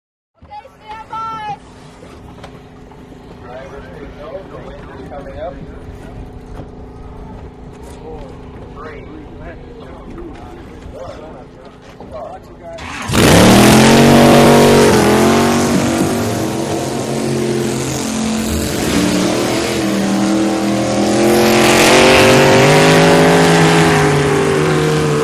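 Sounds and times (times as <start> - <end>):
motorboats at a boat race start: 0.4 - 25.2.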